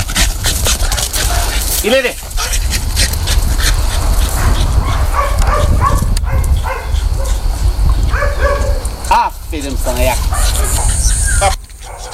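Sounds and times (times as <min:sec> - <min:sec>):
search and rescue dog barking and yipping: 0:00.0 - 0:09.1, 0:10.0 - 0:12.1
steady outdoor noise: 0:00.0 - 0:12.1
speech: 0:01.8 - 0:02.3, 0:09.1 - 0:10.8, 0:11.4 - 0:11.6.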